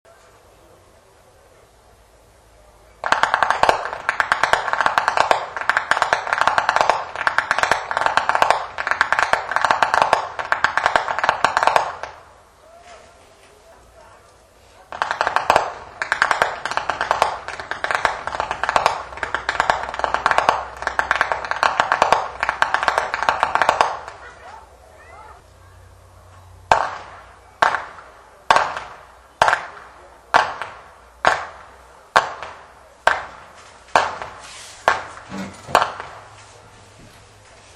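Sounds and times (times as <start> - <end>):
whip cracking in Steindorf Flachgau: 3.0 - 12.2, 14.9 - 24.4, 26.7 - 36.5.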